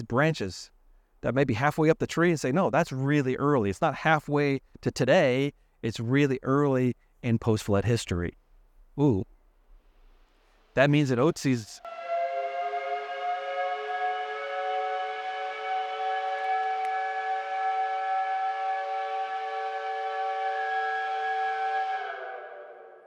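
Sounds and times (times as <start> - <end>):
speech: 0.0 - 8.4, 9.0 - 9.4, 10.8 - 12.0
steam whistle blast marking class changes: 11.8 - 23.0.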